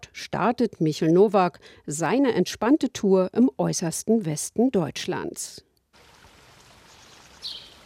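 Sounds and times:
speech: 0.2s - 5.7s
small river water rushing gently at a canoe launch point: 6.0s - 7.8s.

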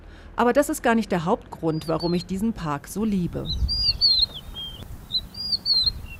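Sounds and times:
speech: 0.4s - 3.8s
birds chirping in shrubland: 1.6s - 6.1s
low rumble of wind: 1.7s - 6.1s.

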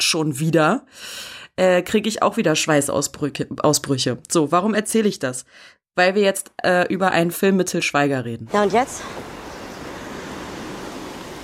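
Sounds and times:
speech: 0.0s - 9.4s
ocean surf on shore: 8.5s - 11.4s.

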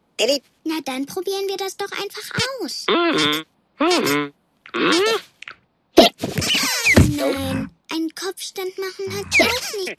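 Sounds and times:
speech: 0.2s - 5.3s, 7.2s - 9.9s
elephant character hiccuping: 2.9s - 5.3s, 6.0s - 7.7s, 9.1s - 9.9s.

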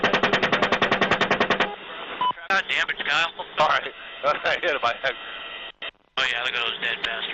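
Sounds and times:
machine-gun fire from a military helicopter: 0.0s - 1.7s
tinny band-limited radio chatter from several voices: 1.7s - 7.3s.

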